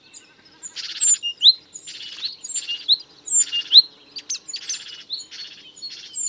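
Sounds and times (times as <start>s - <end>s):
Great tit Parus major calls: 0.0s - 6.2s.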